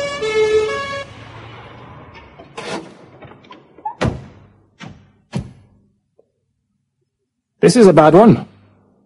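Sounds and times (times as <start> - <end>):
distant ambulance siren wailing: 0.0 - 2.5
heavy thuds and bangs: 4.0 - 5.8
speech: 7.7 - 8.5.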